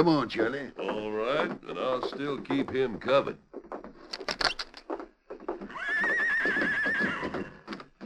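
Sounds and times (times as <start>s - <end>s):
speech: 0.0s - 3.5s
stallion neighing: 5.6s - 7.8s.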